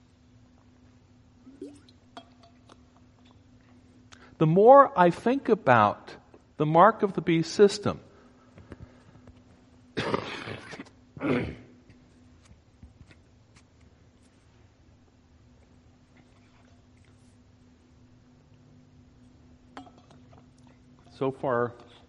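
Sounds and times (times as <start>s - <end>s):
faint low hum: 0.0s - 22.0s
speech: 4.4s - 8.1s, 21.4s - 22.0s
person coughing: 10.0s - 11.8s.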